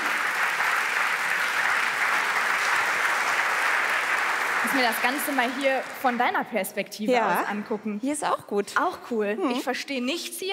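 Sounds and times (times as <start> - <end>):
audience applause at an evening event: 0.0 - 6.4
speech: 4.7 - 10.5.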